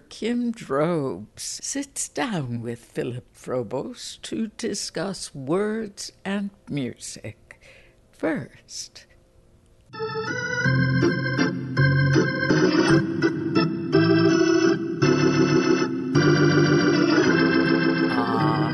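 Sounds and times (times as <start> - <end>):
speech: 0.2 - 7.4, 8.2 - 9.1, 10.0 - 11.2
ballpark organ playing a lively tune at a baseball game: 10.0 - 18.7.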